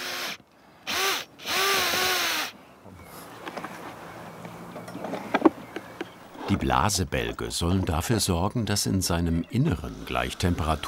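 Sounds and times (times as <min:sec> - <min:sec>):
power drill drilling air-supply holes into a furnace at a fire site: 0:00.0 - 0:02.6
quiet scraping: 0:02.9 - 0:08.1
speech: 0:06.5 - 0:10.8.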